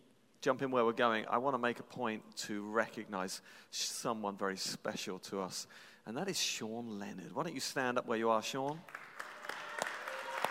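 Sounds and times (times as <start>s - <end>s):
speech: 0.4s - 9.1s
room full of people applauding: 8.9s - 10.4s.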